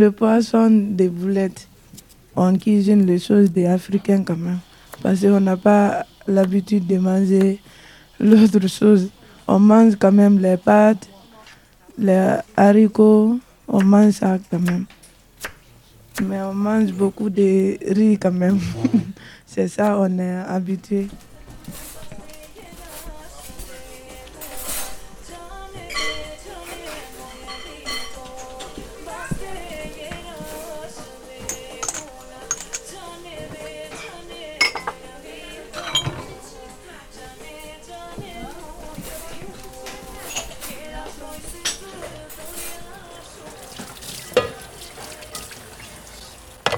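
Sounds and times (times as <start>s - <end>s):
speech: 0.0s - 1.7s, 2.4s - 11.1s, 12.0s - 15.0s, 16.2s - 21.9s
plates and utensils clinking and knocking: 25.8s - 29.4s, 31.3s - 33.0s, 33.8s - 35.1s, 35.7s - 36.5s, 39.8s - 42.8s, 43.7s - 45.7s
tap water running at a sink: 43.2s - 46.7s.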